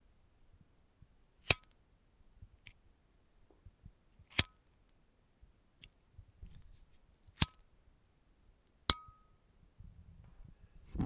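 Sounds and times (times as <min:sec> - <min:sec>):
lighter flick: 0:04.3 - 0:04.5.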